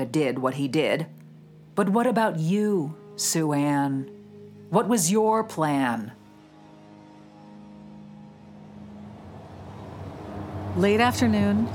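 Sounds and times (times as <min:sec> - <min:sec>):
speech: 0:00.0 - 0:01.2, 0:01.8 - 0:06.2, 0:10.8 - 0:11.7
broadband road noise: 0:07.2 - 0:11.7
sedan engine humming driving down out of the mountains above Chongqing: 0:07.5 - 0:11.7.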